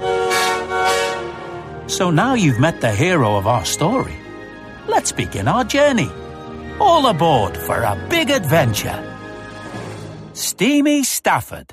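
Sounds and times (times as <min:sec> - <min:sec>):
small boxy wooden battery electric engine horn honking: 0:00.0 - 0:01.4
speech: 0:01.9 - 0:04.2, 0:05.0 - 0:09.2, 0:10.4 - 0:11.7.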